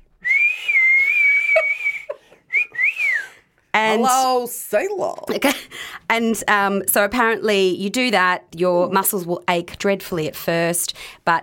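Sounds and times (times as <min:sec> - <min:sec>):
person whistling loudly as a chest-muscle exercise: 0:00.2 - 0:03.4
speech: 0:03.8 - 0:11.4.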